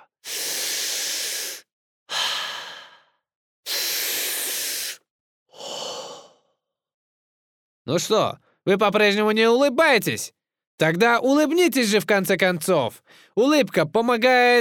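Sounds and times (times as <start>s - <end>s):
slow deep breathing: 0.2s - 6.6s, 13.0s - 13.4s
speech: 7.9s - 14.5s.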